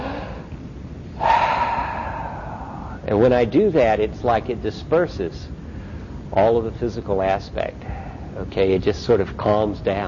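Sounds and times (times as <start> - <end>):
deep breath during a meditation practice: 0.0 - 3.1, 7.8 - 8.4
quiet hiss: 0.0 - 10.0
speech: 3.1 - 5.7, 6.3 - 10.0.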